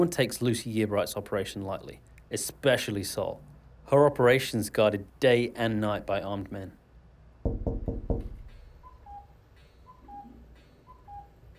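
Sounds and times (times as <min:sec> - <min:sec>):
speech: 0:00.0 - 0:06.8
knocking at the front door: 0:07.4 - 0:08.7
soft two-note electronic chirp: 0:08.8 - 0:11.4.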